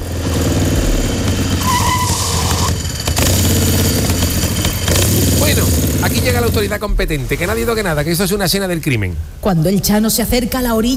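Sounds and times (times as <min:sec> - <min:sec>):
motorcycle engine revving and idling: 0:00.0 - 0:06.8
high screech: 0:00.9 - 0:05.6
speech: 0:06.4 - 0:10.9.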